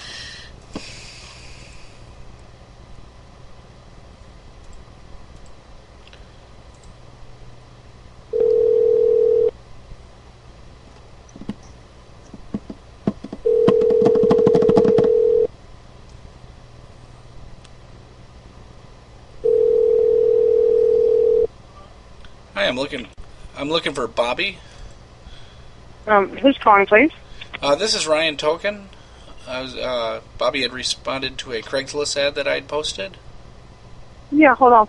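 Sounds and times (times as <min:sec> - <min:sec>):
low noise: 0:00.0 - 0:34.8
steady mid-pitched telephone beep as a call is placed: 0:08.4 - 0:09.5, 0:13.5 - 0:15.5, 0:19.4 - 0:21.5
speech: 0:23.7 - 0:24.7, 0:26.1 - 0:28.9, 0:29.5 - 0:33.2, 0:34.4 - 0:34.8.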